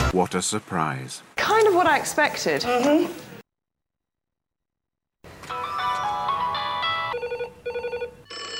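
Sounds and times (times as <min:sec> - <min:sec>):
speech: 0:00.2 - 0:03.3
telephone ringtone with melodic electronic tones: 0:05.5 - 0:08.5.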